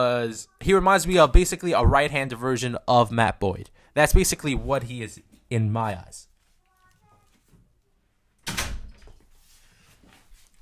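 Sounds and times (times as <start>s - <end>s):
speech: 0.2s - 6.3s
door shutting with a solid thud: 8.4s - 9.2s.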